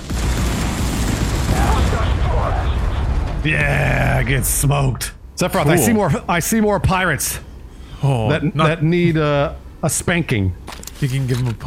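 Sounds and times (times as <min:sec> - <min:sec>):
rapid machine-gun fire in a space shooter video game: 0:00.0 - 0:02.4
speech: 0:03.4 - 0:11.6
person talking excitedly: 0:05.5 - 0:06.3.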